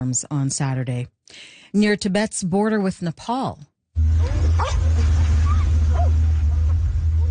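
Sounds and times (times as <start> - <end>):
speech: 0.1 - 5.3
constant heavy low rumble: 4.0 - 7.2
rescue dogs barking and yipping while searching flood debris: 4.1 - 7.2.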